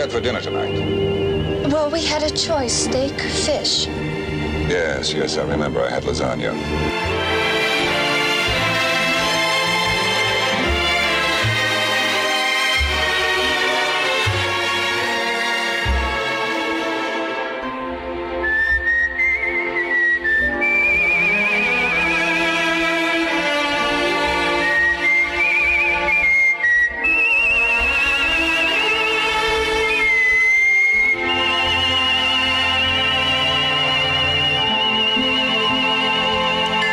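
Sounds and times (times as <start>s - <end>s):
person whistling a melody with gentle vibrato: 0.0s - 2.5s, 18.4s - 22.5s, 24.5s - 36.9s
speech: 0.0s - 7.4s
full musical accompaniment: 0.0s - 36.9s.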